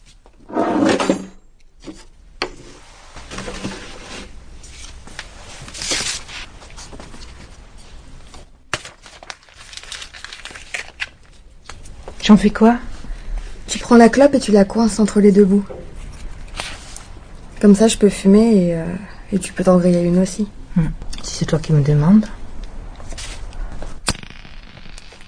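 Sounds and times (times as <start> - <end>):
drawer shutting with a thud: 0.5 - 1.4
drawer sliding open with a loud scrape: 0.5 - 1.4, 3.2 - 4.3
speech: 12.3 - 12.9, 13.7 - 15.8, 17.6 - 22.4.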